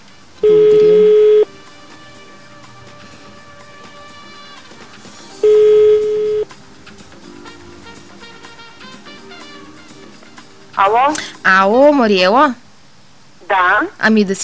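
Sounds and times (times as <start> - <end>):
faint noise: 0.0 - 14.4
long steady telephone ringback tones: 0.4 - 1.5, 5.4 - 6.5
speech: 11.0 - 12.6, 13.5 - 14.4.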